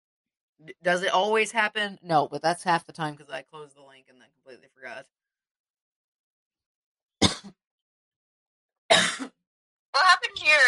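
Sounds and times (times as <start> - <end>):
speech: 0.6 - 5.2, 10.0 - 10.6
person coughing harsh coughs: 7.2 - 7.6, 8.9 - 9.4.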